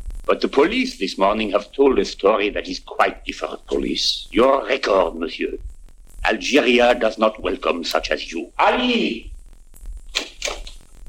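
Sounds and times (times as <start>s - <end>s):
low rumble: 0.0s - 10.1s
speech: 0.3s - 5.7s, 6.3s - 9.3s
door opening with latch and creaking swing: 10.1s - 10.8s.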